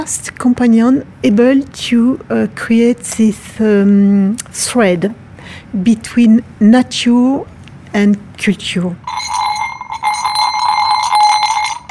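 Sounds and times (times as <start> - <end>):
speech: 0.0 - 9.4
horse harness bells jingling on the road: 9.1 - 11.8.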